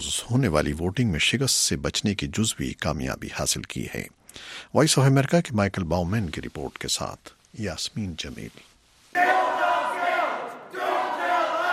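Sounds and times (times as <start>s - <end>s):
speech: 0.0s - 9.4s
crowd of protesters chanting slogans in unison: 9.2s - 11.7s.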